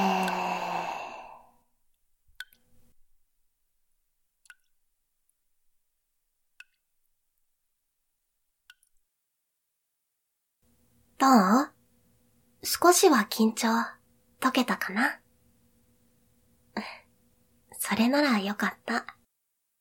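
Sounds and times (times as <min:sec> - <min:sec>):
deep breath released as a long soft sigh: 0:00.0 - 0:01.6
speech: 0:11.2 - 0:11.7, 0:12.6 - 0:15.2, 0:17.8 - 0:19.2.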